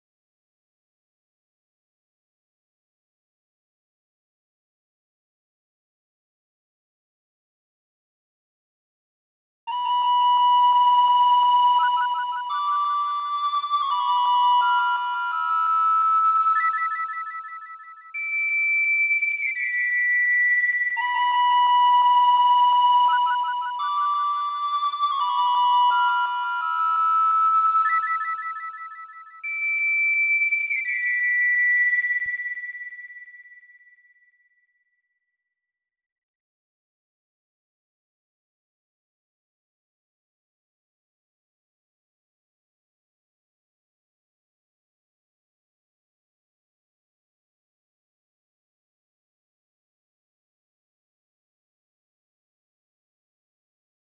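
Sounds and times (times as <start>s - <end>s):
flute: 9.7s - 34.5s.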